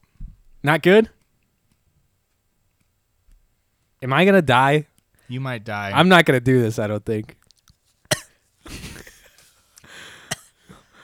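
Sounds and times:
speech: 0.6s - 1.2s, 4.0s - 7.4s
person coughing after eating something very spicy: 8.1s - 8.8s
strained breaths: 9.2s - 11.0s.

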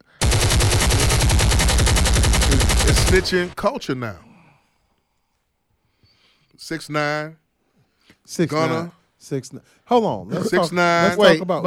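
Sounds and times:
rapid automatic gunfire: 0.0s - 3.6s
speech: 3.1s - 4.3s, 6.6s - 7.4s, 8.2s - 11.6s.

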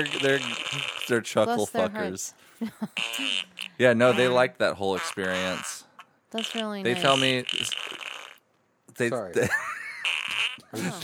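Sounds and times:
comic fart noise: 0.0s - 1.6s, 3.0s - 8.5s, 9.6s - 11.0s
speech: 0.0s - 8.1s, 9.0s - 11.0s
laughter: 2.5s - 3.3s, 9.4s - 11.0s.

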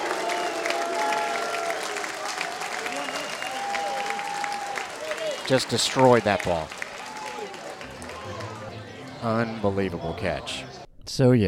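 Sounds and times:
baseball stadium crowd cheering and clapping: 0.0s - 10.8s
speech: 5.5s - 6.8s, 9.2s - 11.4s.

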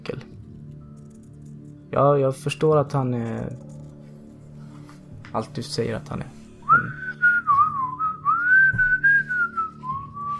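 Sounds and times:
speech: 1.9s - 3.7s, 5.3s - 6.4s
person whistling a wandering melody while approaching: 6.6s - 10.3s.

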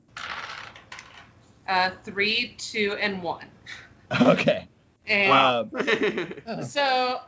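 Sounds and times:
dice clattering across a hard tabletop: 0.1s - 1.4s
speech: 1.7s - 7.2s
laughter: 4.1s - 4.6s, 5.3s - 6.7s.

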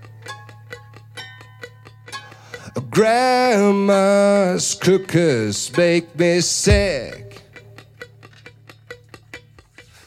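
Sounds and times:
speech: 3.0s - 7.2s
clock ticking: 6.6s - 7.7s.

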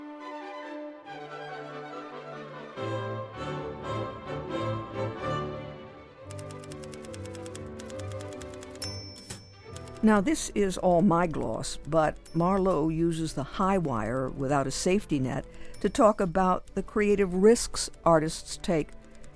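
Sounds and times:
instrumental music: 0.0s - 19.3s
typewriter keys clattering: 6.3s - 19.3s
typewriter carriage-return bell ding: 8.7s - 10.5s, 12.2s - 17.6s
speech: 10.0s - 19.0s.

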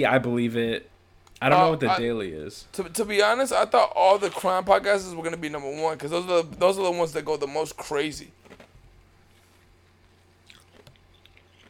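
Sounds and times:
speech: 0.0s - 8.4s
steady low hum: 0.0s - 11.6s
man crunchily chewing ice: 9.9s - 11.6s.

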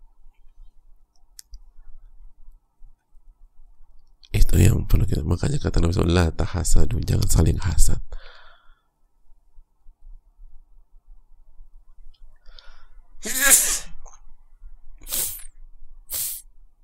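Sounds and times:
faint low hum: 0.0s - 16.8s
speech: 4.5s - 8.3s
person sneezing: 13.2s - 14.0s, 15.1s - 15.5s, 16.1s - 16.4s.

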